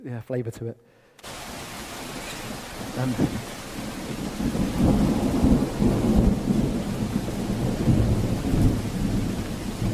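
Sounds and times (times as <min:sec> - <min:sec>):
speech: 0:00.0 - 0:01.4, 0:03.0 - 0:03.6, 0:04.4 - 0:05.1
steady wash of rain: 0:01.2 - 0:09.9
deep rolling rumble of thunder echoing through a storm: 0:02.2 - 0:09.9.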